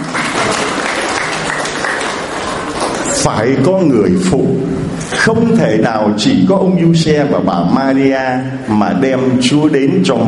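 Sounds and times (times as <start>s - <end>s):
audience applause: 0.0s - 3.3s
speech: 3.2s - 10.2s.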